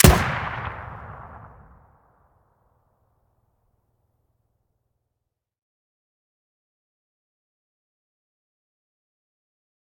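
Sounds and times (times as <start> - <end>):
M203 grenade launcher firing: 0.0 - 1.8.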